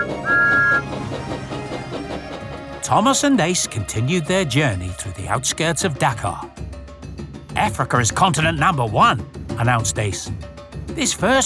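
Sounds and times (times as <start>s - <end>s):
steam engine whistle: 0.0s - 1.1s
speech: 2.9s - 6.6s, 7.7s - 11.4s.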